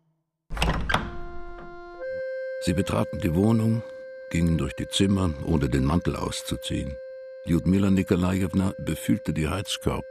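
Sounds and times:
apartment door being unlocked and opened: 0.5 - 2.0
speech: 2.6 - 10.0.

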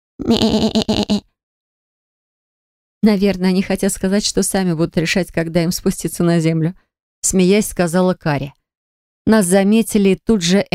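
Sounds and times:
goats bleating together: 0.2 - 1.2
speech: 0.2 - 1.3, 3.0 - 8.6, 9.3 - 10.7.

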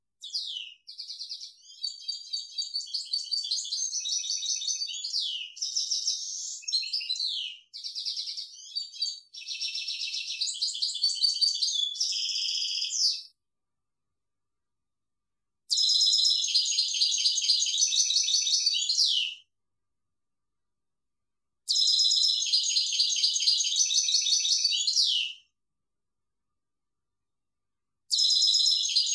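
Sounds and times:
European goldfinch tinkling twitter song: 0.2 - 13.3, 15.7 - 19.4, 21.7 - 25.4, 28.1 - 29.1.

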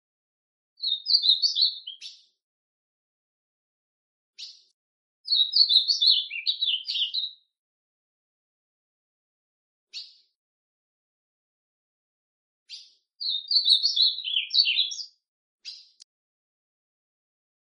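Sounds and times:
ultramarine grosbeak warbled song: 0.8 - 2.4, 4.4 - 7.5, 9.9 - 10.4, 12.7 - 16.1.

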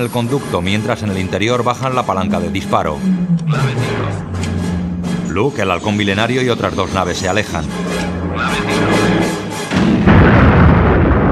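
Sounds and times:
speech: 0.0 - 4.5, 5.3 - 9.0
space station exploding after its main reactor is hit: 2.2 - 5.3, 9.8 - 11.3.

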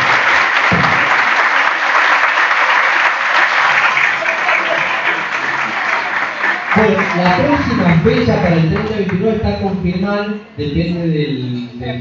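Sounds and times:
applause at the close of a meeting: 0.0 - 9.4
speech: 6.8 - 11.9.

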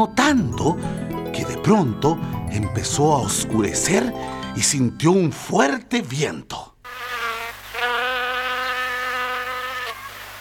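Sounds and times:
speech: 0.0 - 6.7
insect buzzing sound effect: 6.8 - 10.3.

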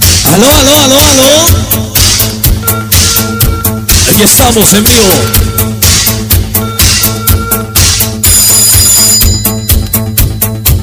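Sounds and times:
party DJ mix thumping beat: 0.0 - 10.8
speech: 0.4 - 2.0, 4.2 - 5.6
telephone ringtone in a party DJ mix: 2.4 - 10.8.

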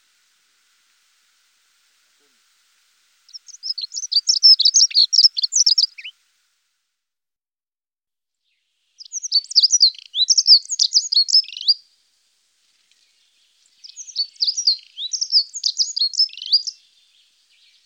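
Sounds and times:
dunnock song warble: 3.3 - 6.1, 8.5 - 11.8, 12.8 - 17.8.

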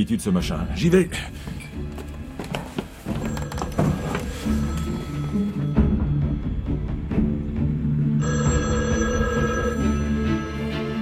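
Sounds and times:
speech: 0.0 - 1.5
continuous bed of music: 0.0 - 10.9
telephone bell ringing at the town hall on the island of Sein: 3.2 - 5.6, 8.2 - 10.9.

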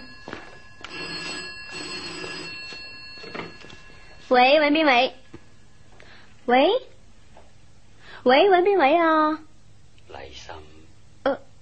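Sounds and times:
telephone bell ringing: 0.0 - 5.9
speech: 4.3 - 5.2, 6.5 - 6.9, 8.2 - 9.4.

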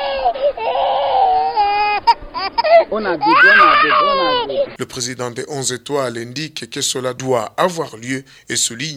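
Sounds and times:
babies crying during a women's football match: 0.0 - 4.8
speech: 2.9 - 8.9.

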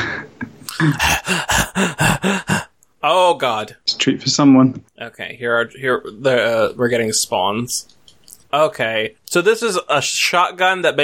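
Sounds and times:
video game character panting heavily: 0.7 - 2.7
speech: 0.8 - 11.0.

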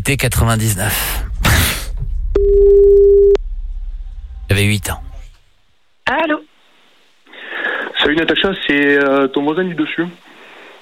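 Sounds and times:
speech: 0.0 - 1.8, 4.8 - 5.0, 8.1 - 10.3
telephone ringing tone on a call: 2.4 - 3.4.

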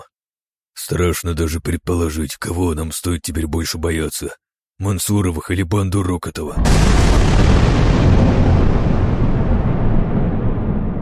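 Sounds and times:
speech: 0.9 - 8.6
thunder from a lightning strike outside a mansion window: 6.6 - 10.9.

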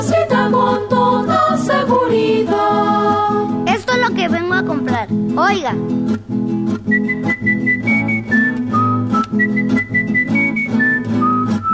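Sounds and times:
instrumental music with low bass and rhythmic accents: 0.0 - 11.7
speech: 4.7 - 7.3
person whistling a bright high melody: 6.9 - 11.7.

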